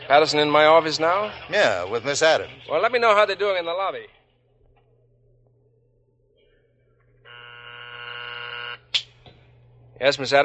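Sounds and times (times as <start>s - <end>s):
speech: 0.1s - 4.2s, 10.0s - 10.4s
buzzy electronic telephone tone: 7.2s - 8.9s.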